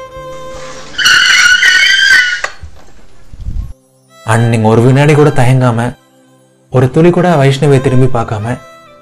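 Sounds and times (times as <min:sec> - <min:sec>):
cab braking hard with tire screech: 0:00.8 - 0:02.6
speech: 0:04.3 - 0:06.0, 0:06.7 - 0:08.7.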